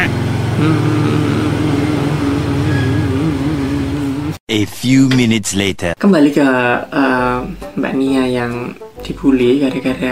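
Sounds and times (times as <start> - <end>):
motorcycle engine passing by: 0.0 - 4.4
speech: 0.6 - 1.3, 4.5 - 10.0.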